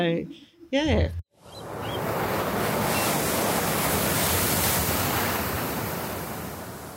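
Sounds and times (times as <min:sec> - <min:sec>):
speech: 0:00.0 - 0:01.2
ocean surf waves breaking on the shore: 0:01.4 - 0:06.9.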